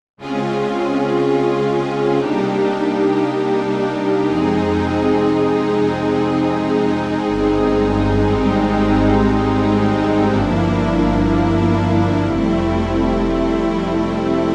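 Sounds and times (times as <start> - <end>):
Yamaha CP88 keyboard Streicher strings: 0.2 - 14.5.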